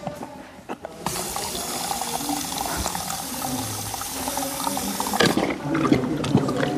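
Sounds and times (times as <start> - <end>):
water rushing from an automatic horse drinker: 1.0 - 6.7
water splashing and sloshing in an automatic drinker: 5.2 - 6.7.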